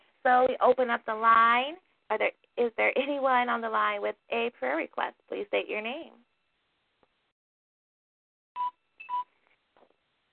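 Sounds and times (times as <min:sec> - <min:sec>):
speech: 0:00.2 - 0:06.2
mobile phone beeping as its battery dies: 0:08.6 - 0:09.4.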